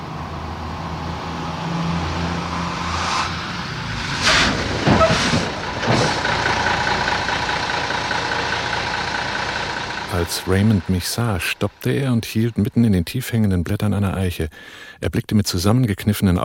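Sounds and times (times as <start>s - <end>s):
truck engine rumbling while swaying around a bend: 0.0s - 14.8s
truck rattling and creaking around a bend: 4.2s - 11.9s
speech: 10.3s - 16.4s.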